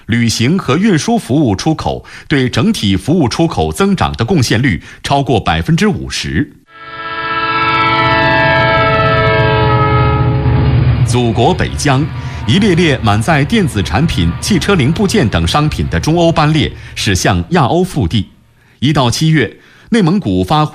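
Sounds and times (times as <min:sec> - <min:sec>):
speech: 0:00.1 - 0:06.6, 0:11.1 - 0:20.7
freight train horn blaring: 0:06.7 - 0:17.5
faint freight train noise: 0:06.7 - 0:20.2.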